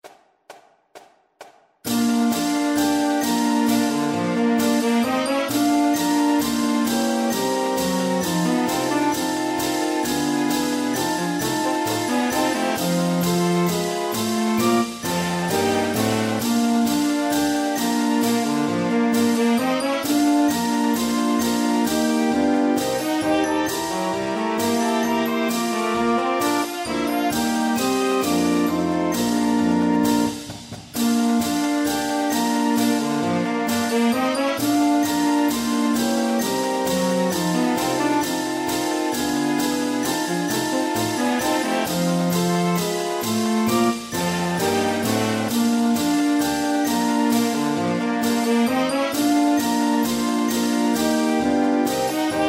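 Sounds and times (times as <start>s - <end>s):
marching band playing: 1.9s - 52.4s.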